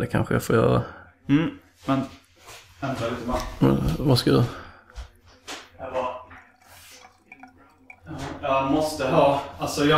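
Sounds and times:
speech: 0.0s - 4.6s, 8.1s - 9.9s
water splashing and trickling into a glass: 6.0s - 9.4s
faint glass clinks: 6.2s - 8.6s
water dripping: 6.2s - 9.1s.

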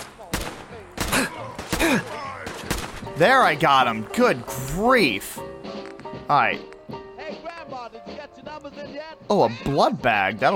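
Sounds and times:
video game gunshots from a super mutant shooting at the player: 0.0s - 3.2s
speech: 3.2s - 5.4s, 6.3s - 6.7s, 9.3s - 10.5s.

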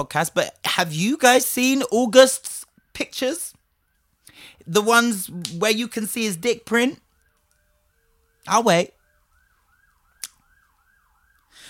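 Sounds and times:
speech: 0.0s - 3.6s, 4.4s - 7.0s, 8.4s - 9.0s
emergency vehicle siren wailing: 0.0s - 11.6s
sharp click: 10.2s - 10.4s.

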